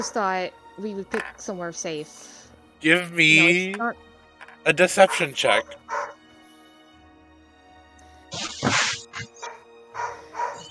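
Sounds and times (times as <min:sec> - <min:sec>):
speech: 0:00.0 - 0:06.2
dog barking: 0:05.0 - 0:06.2, 0:09.2 - 0:10.6.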